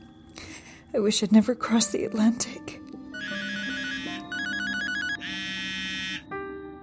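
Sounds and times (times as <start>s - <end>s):
speech: 0.9s - 2.9s
telephone ringing with an electronic ringtone: 3.2s - 6.3s.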